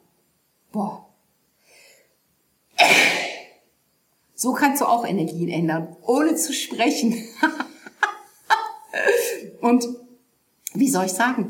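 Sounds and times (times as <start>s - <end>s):
speech: 0.7s - 1.0s, 4.4s - 7.6s, 9.6s - 10.0s, 10.8s - 11.4s
person sneezing: 2.8s - 3.6s.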